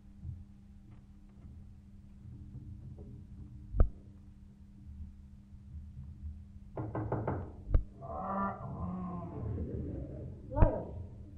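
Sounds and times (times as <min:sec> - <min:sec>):
low steady hum: 0:00.0 - 0:11.3
wooden outhouse door being rattled: 0:06.8 - 0:07.6.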